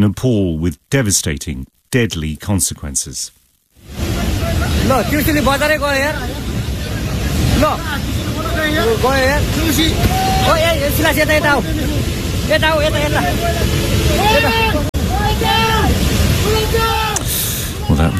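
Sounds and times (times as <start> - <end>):
speech: 0.0 - 6.5, 7.6 - 14.7
flash floodwater surging through a town in Nepal: 3.8 - 18.1
several people calling out and talking: 3.9 - 18.1.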